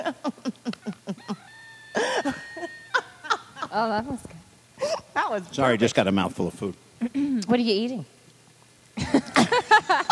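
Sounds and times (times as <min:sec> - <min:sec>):
laughter: 0:00.0 - 0:03.9, 0:09.0 - 0:10.0
rooster crowing breaking into a squawk: 0:01.1 - 0:03.7
speech: 0:03.8 - 0:04.3, 0:05.3 - 0:08.2.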